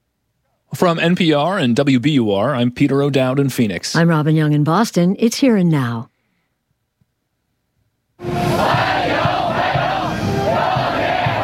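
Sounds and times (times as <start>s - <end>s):
speech: 0.7s - 6.1s
large crowd of teenagers chanting a welcome in unison: 8.2s - 11.4s.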